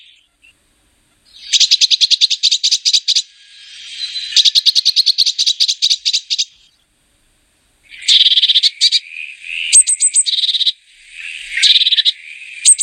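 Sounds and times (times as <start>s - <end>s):
Eurasian blue tit song: 1.3s - 6.8s, 7.8s - 12.8s.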